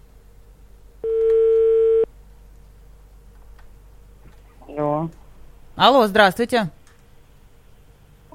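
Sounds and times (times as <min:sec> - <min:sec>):
telephone dial tone while dialing a number: 0:01.0 - 0:02.1
speech: 0:05.8 - 0:06.8.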